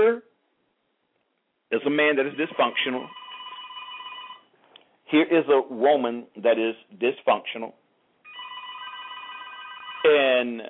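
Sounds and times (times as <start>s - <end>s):
speech: 0.0s - 0.3s, 1.7s - 3.2s, 5.1s - 7.8s, 10.1s - 10.6s
telephone ringing with electronic trill: 2.3s - 4.5s, 8.3s - 10.4s.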